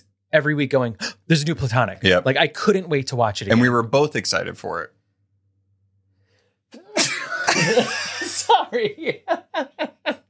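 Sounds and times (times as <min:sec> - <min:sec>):
speech: 0:00.3 - 0:05.0, 0:07.6 - 0:10.0
loud sneeze with a rising intake of breath: 0:06.8 - 0:08.5
laughter: 0:07.0 - 0:10.2.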